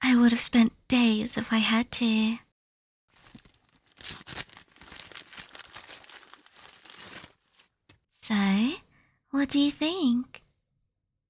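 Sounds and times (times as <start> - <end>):
speech: 0.1 - 2.4, 9.4 - 10.4
gift wrapping paper crinkling and tearing as it is unwrapped: 3.2 - 7.8.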